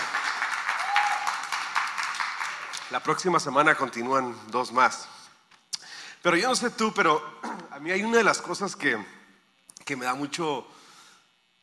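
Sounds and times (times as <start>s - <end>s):
small group applauding: 0.0s - 3.2s
speech: 2.9s - 5.2s, 6.2s - 9.2s, 9.9s - 10.8s.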